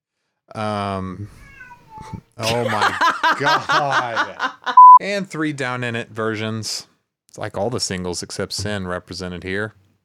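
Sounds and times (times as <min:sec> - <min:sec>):
speech: 0:00.5 - 0:09.8
cat meowing: 0:01.3 - 0:02.2
laughter: 0:02.4 - 0:04.8.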